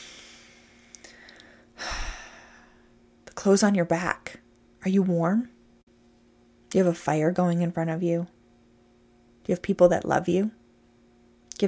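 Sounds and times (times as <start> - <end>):
deep breath: 0.0 - 3.0
faint clicks: 0.8 - 1.6
speech: 3.4 - 5.6, 6.7 - 8.4, 9.5 - 10.6.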